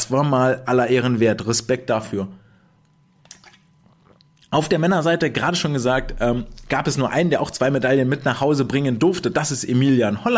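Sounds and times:
speech: 0.1s - 2.4s, 4.5s - 10.3s
sipping water from a glass: 2.8s - 4.6s.

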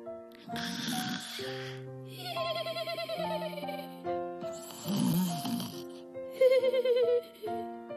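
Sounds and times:
gentle melodic music bed: 0.0s - 7.9s
soft rasping snores: 0.4s - 1.8s, 4.5s - 6.0s.

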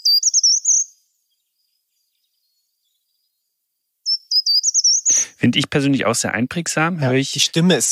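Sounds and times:
short-toed treecreeper song: 0.0s - 7.9s
speech: 5.4s - 7.9s.

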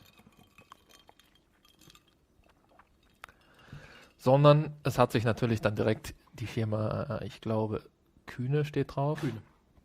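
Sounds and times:
glasses clinking together in a toast: 0.0s - 4.3s
speech: 4.2s - 9.5s.

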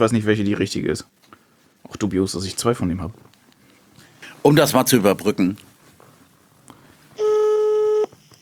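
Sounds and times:
speech: 0.0s - 1.2s, 1.9s - 3.3s, 4.4s - 5.7s
faint hiss: 0.0s - 8.4s
telephone ringback tone of an outgoing call: 7.2s - 8.2s.

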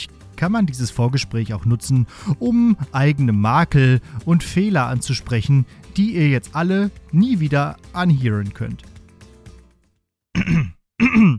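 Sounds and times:
speech: 0.0s - 8.9s
person clearing throat harshly: 10.3s - 11.3s.

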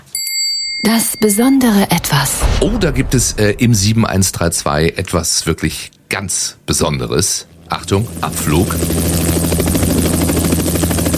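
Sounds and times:
speech: 0.8s - 9.6s
loud constant helicopter engine drone: 8.0s - 11.1s.

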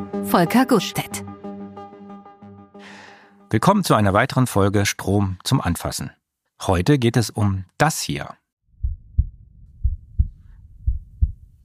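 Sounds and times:
speech: 0.3s - 1.3s, 3.5s - 8.4s
heartbeat with deep lub-dub thumps: 8.8s - 11.6s.

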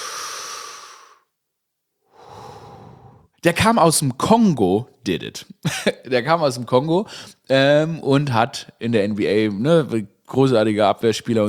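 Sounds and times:
deep airy breath drawn in: 0.0s - 1.3s, 2.0s - 3.4s, 7.1s - 7.4s
speech: 3.4s - 11.4s.

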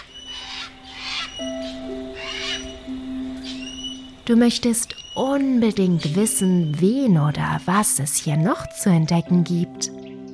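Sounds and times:
two parrots squawking in a jungle: 0.0s - 4.2s
steady low musical drone: 0.0s - 10.3s
speech: 4.3s - 10.1s.

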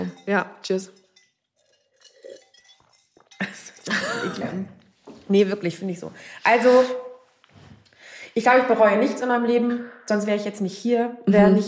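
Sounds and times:
faint ringing clinking sounds: 0.0s - 4.6s
speech: 0.3s - 1.0s, 3.4s - 7.1s, 8.4s - 11.6s
single short harsh cough: 3.9s - 4.7s.

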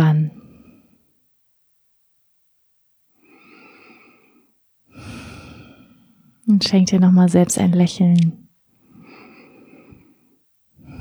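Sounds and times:
deep breath in and out during a guided relaxation: 3.2s - 6.4s, 8.8s - 10.9s
speech: 6.5s - 8.4s.

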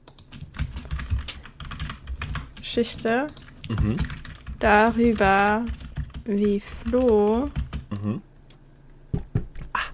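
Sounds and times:
rapid typing on a computer keyboard: 0.0s - 7.9s
speech: 2.7s - 8.3s.

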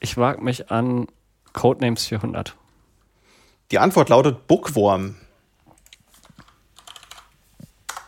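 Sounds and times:
speech: 0.0s - 2.6s, 3.7s - 5.2s
rapid typing on a computer keyboard: 5.7s - 8.0s.

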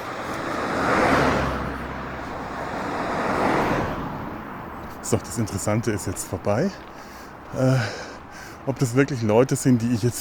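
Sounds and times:
cars passing by: 0.0s - 10.2s
speech: 5.1s - 8.1s, 8.7s - 10.2s.

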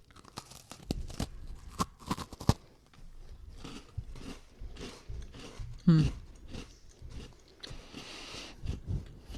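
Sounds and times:
crunchy bites into crisp sandwich cookies: 0.0s - 9.1s
wet chewing and crumbling of sandwich cookies: 0.0s - 9.3s.

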